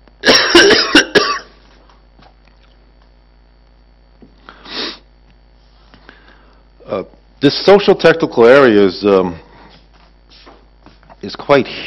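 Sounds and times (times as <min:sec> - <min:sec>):
person coughing harshly: 0:00.2 - 0:01.6
speech: 0:07.0 - 0:09.4, 0:11.3 - 0:11.8.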